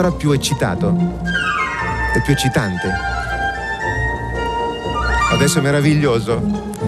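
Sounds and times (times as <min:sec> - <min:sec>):
speech: 0:00.0 - 0:03.3, 0:05.3 - 0:06.8
orchestral music with thick lower strings and winds: 0:00.0 - 0:06.8
piccolo doubling the flute in a bright high line: 0:01.3 - 0:06.3.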